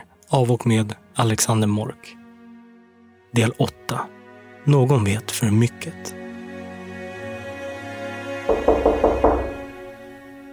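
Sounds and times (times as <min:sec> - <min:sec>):
steady low musical drone: 0:00.1 - 0:10.5
speech: 0:00.3 - 0:02.2, 0:03.3 - 0:06.2
firm knocks on a door: 0:08.5 - 0:09.8.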